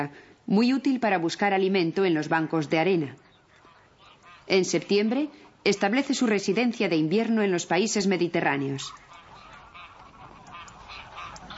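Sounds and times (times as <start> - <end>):
speech: 0.0 - 3.2, 4.5 - 9.0
greylag geese honking: 3.3 - 11.5.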